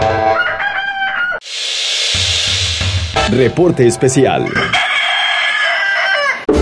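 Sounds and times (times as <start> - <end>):
rooster crowing: 0.1 - 1.4, 4.4 - 6.5
steady wash of hissing noise: 1.4 - 3.8
speech: 3.3 - 4.8.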